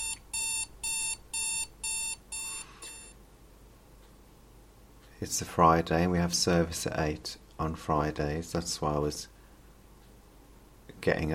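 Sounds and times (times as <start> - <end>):
alarm clock beeping: 0.0 - 3.2
speech: 5.2 - 9.3, 11.0 - 11.3.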